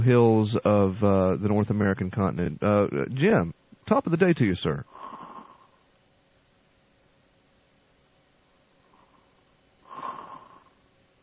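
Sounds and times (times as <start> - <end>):
speech: 0.0 - 5.0
low hiss: 0.0 - 11.2
quiet breathing: 4.8 - 6.0, 8.4 - 11.0
faint snoring: 4.9 - 5.8, 8.8 - 10.8.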